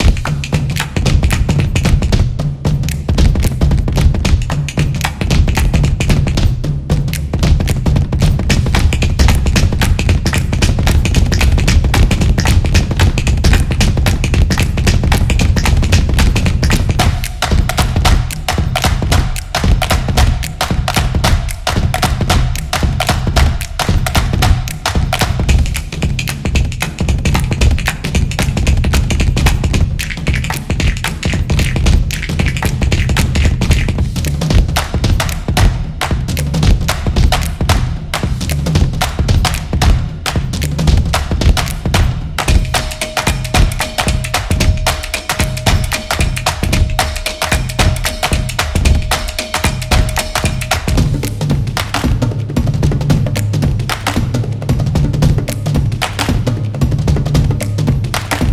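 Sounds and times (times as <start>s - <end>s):
drum solo: 0.0s - 58.5s.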